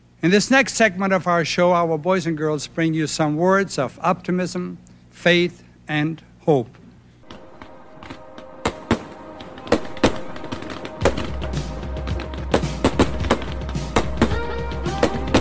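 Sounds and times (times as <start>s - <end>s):
speech: 0.2s - 6.8s
fireworks exploding: 7.2s - 15.4s.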